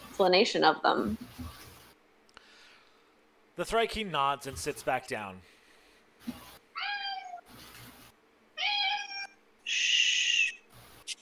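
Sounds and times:
speech: 0:00.2 - 0:01.3, 0:03.6 - 0:05.6, 0:06.2 - 0:06.4
male cat meowing: 0:06.7 - 0:07.5, 0:08.6 - 0:10.6.

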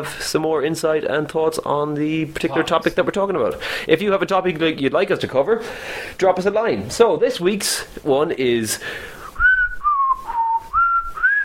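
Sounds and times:
speech: 0:00.0 - 0:09.2
person whistling a TV theme tune: 0:09.3 - 0:11.4.

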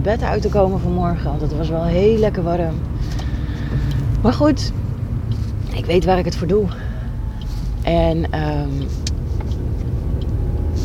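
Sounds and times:
speech: 0:00.0 - 0:04.8, 0:05.8 - 0:06.9, 0:07.9 - 0:09.1
car engine rumble heard from inside the cabin while driving: 0:00.0 - 0:10.8
road noise: 0:00.0 - 0:10.8.

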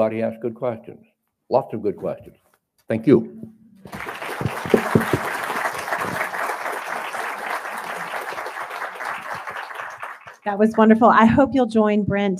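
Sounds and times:
speech: 0:00.0 - 0:04.1, 0:10.4 - 0:12.3
audience applause: 0:03.8 - 0:10.6.

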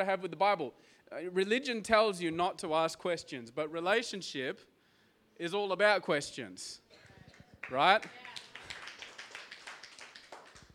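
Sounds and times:
speech: 0:00.0 - 0:04.7, 0:05.4 - 0:06.9, 0:07.6 - 0:08.3
lone audience member clapping in a room: 0:07.3 - 0:10.7.

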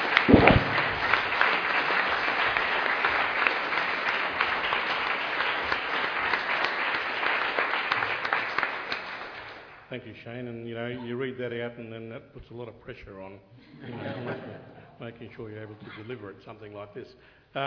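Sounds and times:
audience applause welcoming a speaker: 0:00.0 - 0:09.8
speech: 0:10.2 - 0:17.6
laughter: 0:13.6 - 0:15.0.

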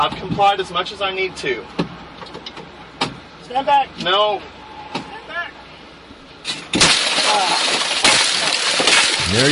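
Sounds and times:
speech: 0:00.0 - 0:02.4, 0:03.5 - 0:04.6, 0:07.3 - 0:07.7, 0:09.3 - 0:09.5
truck window glass being smashed: 0:06.5 - 0:09.5.

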